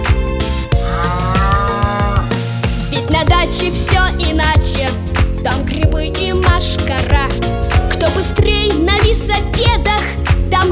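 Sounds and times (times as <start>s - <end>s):
cow mooing: 0.8s - 2.3s
cheerful children's song: 0.8s - 10.7s
speech: 3.4s - 10.7s.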